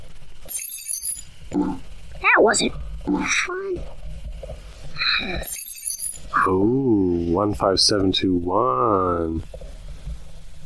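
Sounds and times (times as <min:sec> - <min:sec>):
loud glass shattering sound effect: 0:00.5 - 0:01.2, 0:05.4 - 0:06.2
speech: 0:01.5 - 0:04.0, 0:05.0 - 0:05.6, 0:06.4 - 0:09.7.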